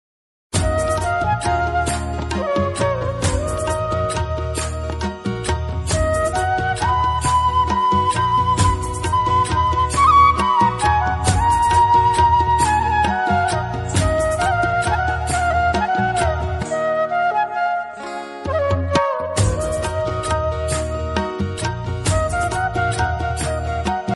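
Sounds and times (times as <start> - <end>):
sad flute cover instrumental background music: 0.6 - 24.1.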